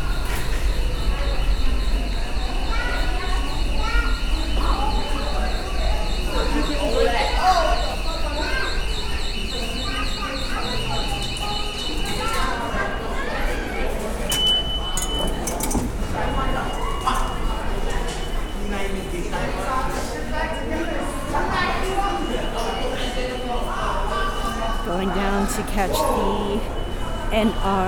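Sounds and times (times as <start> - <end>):
crowd murmur in a subway station: 0.0 - 27.8
clinks and clatters: 14.3 - 16.0.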